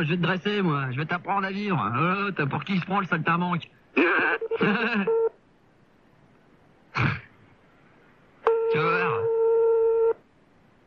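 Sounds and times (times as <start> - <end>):
speech: 0.0 - 5.3
telephone tone burst: 8.5 - 10.2.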